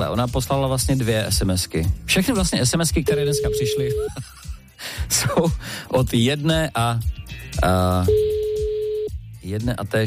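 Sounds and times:
speech: 0:00.0 - 0:08.2, 0:09.4 - 0:10.0
telephone line ringing tone: 0:03.1 - 0:04.1, 0:08.1 - 0:09.1
laughter: 0:04.0 - 0:05.6.

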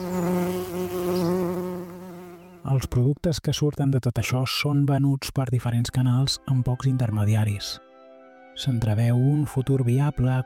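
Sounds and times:
wild pollinating insects buzzing among flowers: 0:00.0 - 0:03.0
speech: 0:02.7 - 0:07.9, 0:08.6 - 0:10.4.

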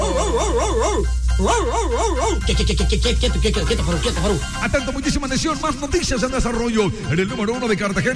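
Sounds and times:
dogs yelping and howling: 0:00.0 - 0:02.5
speech: 0:01.4 - 0:08.1.

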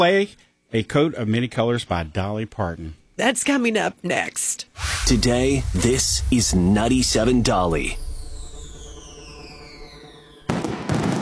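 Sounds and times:
speech: 0:00.0 - 0:08.0
descending firework whistle: 0:04.8 - 0:11.1.

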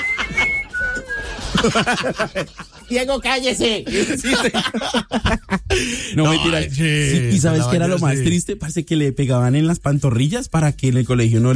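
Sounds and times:
person whistling two sustained notes: 0:00.0 - 0:01.9
laughter: 0:00.0 - 0:02.9, 0:03.8 - 0:08.3
speech: 0:01.6 - 0:11.5.

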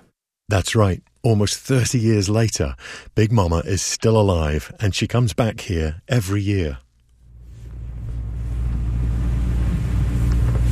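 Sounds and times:
speech: 0:00.5 - 0:06.8
boat motor droning on the Salish Sea heading out to watch whales: 0:07.3 - 0:10.7.

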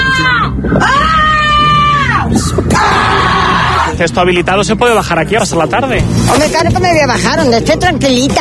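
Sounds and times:
children screaming and shrieking in a plaza: 0:00.0 - 0:04.0
speech: 0:04.0 - 0:08.3.

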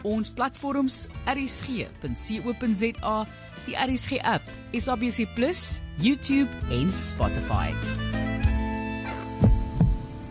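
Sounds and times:
speech: 0:00.0 - 0:08.5
heartbeat sound effect of deep low thuds: 0:08.4 - 0:10.2.

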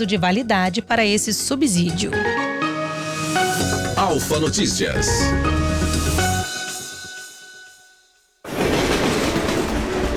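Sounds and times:
speech: 0:00.0 - 0:02.5, 0:03.3 - 0:06.2
train rumbling along the rails: 0:08.6 - 0:10.1.

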